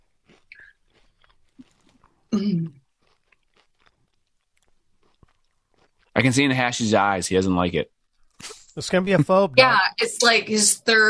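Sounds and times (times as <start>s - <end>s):
crunchy chip being chewed: 0.0s - 2.2s, 2.8s - 6.1s
speech: 2.3s - 2.8s, 6.2s - 8.0s, 8.8s - 11.0s.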